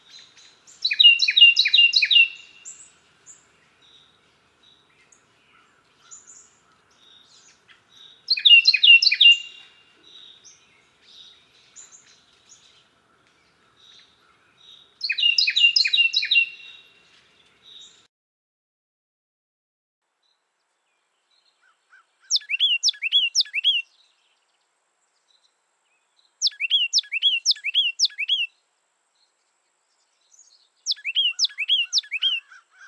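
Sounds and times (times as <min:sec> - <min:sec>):
Carolina wren singing: 0:00.0 - 0:02.8, 0:06.0 - 0:12.6, 0:13.8 - 0:16.8, 0:21.6 - 0:24.2, 0:26.3 - 0:28.5, 0:30.2 - 0:32.8.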